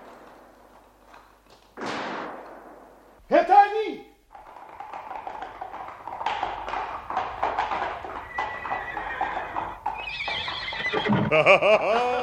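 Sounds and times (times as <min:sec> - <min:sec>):
horse hooves clip-clopping on a ride: 0:00.0 - 0:01.8, 0:04.3 - 0:11.8
horse whinnying: 0:04.3 - 0:11.5
laughter: 0:11.0 - 0:12.2.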